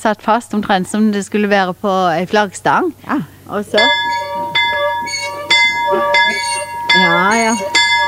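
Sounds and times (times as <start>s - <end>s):
speech: 0.0s - 4.1s, 7.0s - 7.8s
museum bell rung by pulling a rope: 3.8s - 8.0s.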